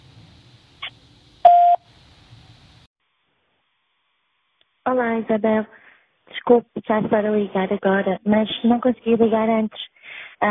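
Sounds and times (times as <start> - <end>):
answering machine beep: 1.4 - 1.8
speech: 4.9 - 5.8, 6.5 - 10.4.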